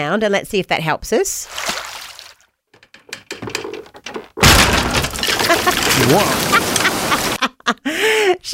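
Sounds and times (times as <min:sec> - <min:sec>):
speech: 0:00.0 - 0:01.7, 0:06.0 - 0:06.7, 0:07.7 - 0:08.5
overfull fishing nets straining as they are cranked in: 0:01.5 - 0:07.4
sharp clicks and knocks: 0:02.8 - 0:07.4
dense crackling rush: 0:04.4 - 0:07.4.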